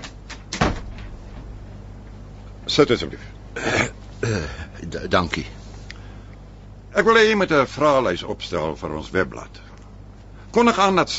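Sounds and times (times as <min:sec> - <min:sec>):
door being shut with a dull low thump: 0:00.5 - 0:01.6
speech: 0:02.8 - 0:05.6, 0:06.9 - 0:09.7, 0:10.5 - 0:11.1.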